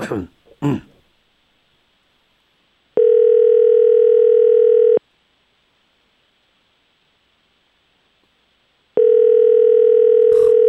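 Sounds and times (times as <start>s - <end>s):
person coughing or clearing throat: 0.0s - 1.0s, 10.3s - 10.6s
telephone busy signal while calling: 3.0s - 5.0s, 9.0s - 10.6s.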